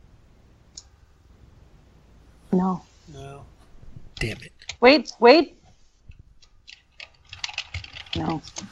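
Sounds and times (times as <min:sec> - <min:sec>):
speech: 0:02.5 - 0:03.6, 0:04.2 - 0:05.6, 0:08.2 - 0:08.7
fingers typing on a computer keyboard: 0:06.4 - 0:08.7.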